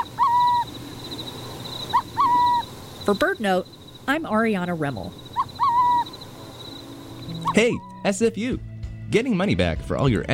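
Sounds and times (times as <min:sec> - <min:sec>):
burrowing owl hooting at a former depot with artificial burrows: 0:00.0 - 0:03.7, 0:05.0 - 0:08.0
speech: 0:03.1 - 0:05.2, 0:07.6 - 0:10.3.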